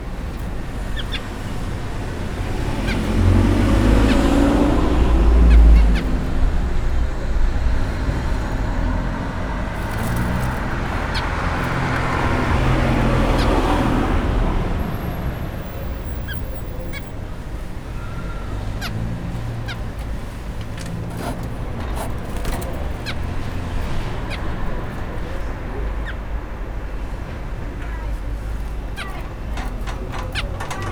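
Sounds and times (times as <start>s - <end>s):
caged bird in front of a shop: 0.0s - 30.9s
vehicle traffic: 0.0s - 30.9s.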